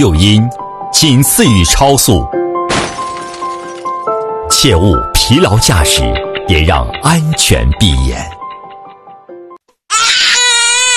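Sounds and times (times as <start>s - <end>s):
speech: 0.0s - 2.4s, 4.5s - 8.4s
baby crying with whimpers and piercing wail: 9.9s - 10.9s.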